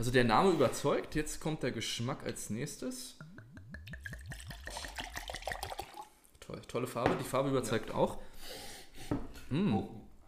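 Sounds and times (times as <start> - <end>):
speech: 0.0 - 3.2, 6.5 - 8.7, 9.5 - 10.1
wine glugging from a bottle into a glass: 3.8 - 6.2.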